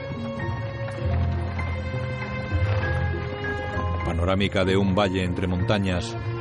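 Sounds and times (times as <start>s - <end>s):
horse hooves clip-clopping at a walking pace: 0.2s - 4.2s
horse-drawn carriage rolling: 0.5s - 4.1s
speech: 4.2s - 6.3s.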